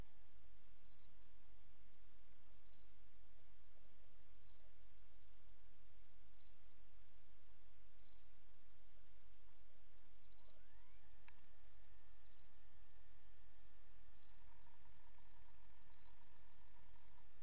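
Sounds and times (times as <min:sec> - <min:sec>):
quiet low hum: 0:00.0 - 0:17.4
cricket chirping: 0:00.9 - 0:01.2, 0:02.7 - 0:03.0, 0:04.4 - 0:04.7, 0:06.4 - 0:06.7, 0:08.0 - 0:08.4, 0:10.2 - 0:11.2, 0:11.9 - 0:12.9, 0:14.1 - 0:17.4.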